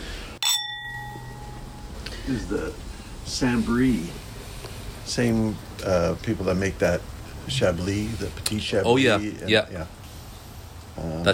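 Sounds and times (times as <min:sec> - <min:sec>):
wine glasses clinking in a toast: 0:00.0 - 0:05.1
speech: 0:02.3 - 0:04.2, 0:05.1 - 0:10.0, 0:11.0 - 0:11.3.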